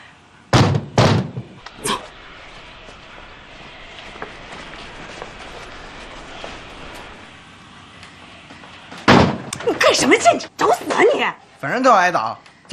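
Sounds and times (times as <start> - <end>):
door banged hard: 0.5 - 2.0, 9.0 - 9.8
speech: 9.9 - 12.7.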